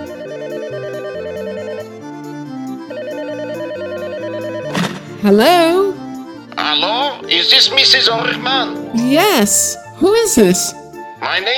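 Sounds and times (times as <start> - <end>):
phone in Tallahassee Florida ringing with warbling electronic trill: 0.0 - 5.2
dense continuous music: 0.0 - 11.5
speech: 5.2 - 5.8, 6.7 - 11.5.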